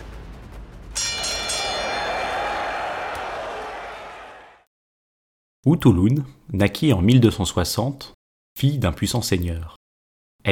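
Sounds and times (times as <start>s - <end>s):
boxing match bell clanging: 1.0s - 3.1s
speech: 5.6s - 9.8s.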